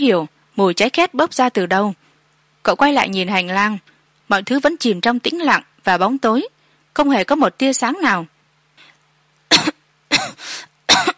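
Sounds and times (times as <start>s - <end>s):
speech: 0.0s - 2.0s, 2.6s - 8.3s
stifled coughing while holding back a coughing fit: 9.5s - 11.1s.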